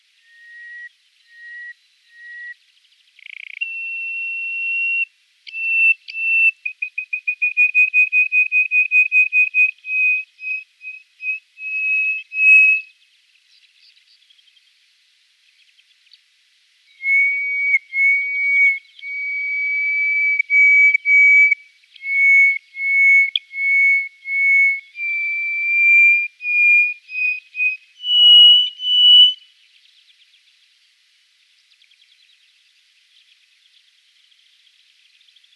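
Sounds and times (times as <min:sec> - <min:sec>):
hoopoe-lark singing: 0:03.2 - 0:12.9, 0:16.9 - 0:29.5.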